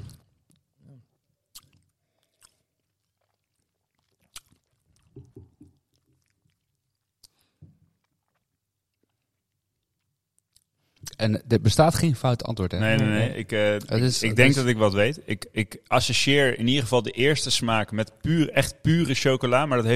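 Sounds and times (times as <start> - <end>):
person sipping and tasting a drink: 0.0 - 9.6
wet lip smacks with small clicks: 1.5 - 7.4
speech: 11.2 - 19.9.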